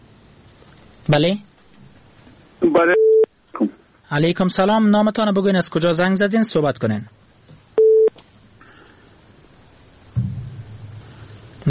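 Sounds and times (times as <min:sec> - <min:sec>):
speech: 0:01.0 - 0:01.5, 0:02.7 - 0:03.0, 0:04.1 - 0:07.2
phone beep after a dropped call: 0:02.8 - 0:03.3, 0:07.8 - 0:08.2
low rumbling noise: 0:09.2 - 0:11.6.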